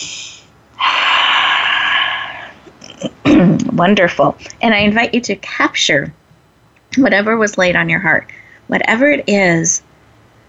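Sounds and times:
deep breath during a guided relaxation exercise: 0:00.0 - 0:02.6
speech: 0:03.4 - 0:06.2, 0:06.9 - 0:09.9.

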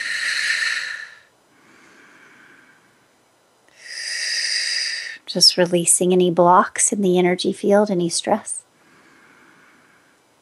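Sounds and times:
person breathing slowly during a relaxation exercise: 0:00.0 - 0:03.1, 0:03.7 - 0:05.2, 0:08.8 - 0:10.3
speech: 0:05.3 - 0:08.6.

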